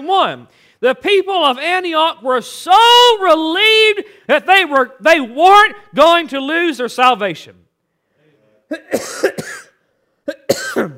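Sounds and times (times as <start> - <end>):
speech: 0.0 - 7.6, 8.7 - 9.6, 10.3 - 10.9
person coughing loud and raspy: 8.7 - 10.9.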